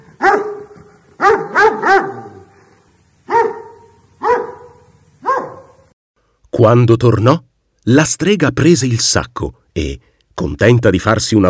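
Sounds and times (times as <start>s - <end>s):
two angry dogs barking: 0.0s - 2.7s, 3.3s - 5.9s
speech: 6.6s - 11.4s.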